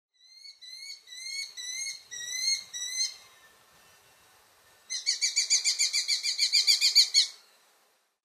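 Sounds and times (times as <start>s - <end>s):
red-footed falcon calling: 0.2s - 3.2s, 4.9s - 7.4s.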